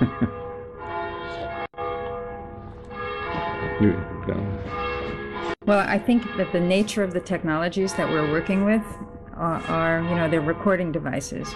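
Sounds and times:
bells ringing: 0.0 - 11.5
speech: 3.8 - 4.8, 5.6 - 11.5.

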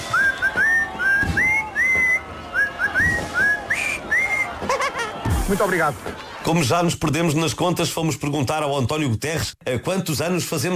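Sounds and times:
person whistling a birthday tune: 0.0 - 4.6
laughter: 2.6 - 6.8
speech: 5.5 - 10.7.

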